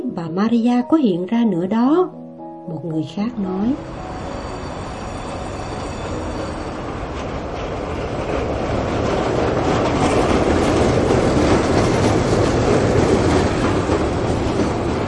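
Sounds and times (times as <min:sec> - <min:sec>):
speech: 0:00.2 - 0:04.2
train rolling into a city with a heavy rumble: 0:03.3 - 0:15.0
clickety-clack of train wheels on rails: 0:03.9 - 0:15.0.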